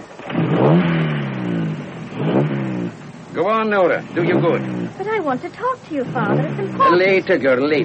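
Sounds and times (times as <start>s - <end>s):
racing car engine starting and revving: 0.2s - 7.8s
speech: 3.7s - 7.8s.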